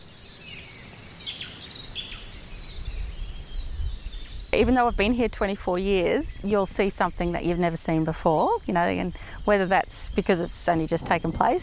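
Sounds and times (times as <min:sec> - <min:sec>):
native birds chirping and trilling: 0:00.0 - 0:11.6
speech: 0:04.6 - 0:11.6.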